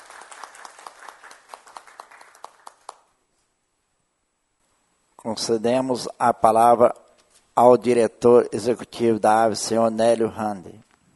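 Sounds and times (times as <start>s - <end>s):
crowd applauding for poultry farmers: 0.0s - 3.2s
speech: 5.2s - 7.0s, 7.6s - 10.8s.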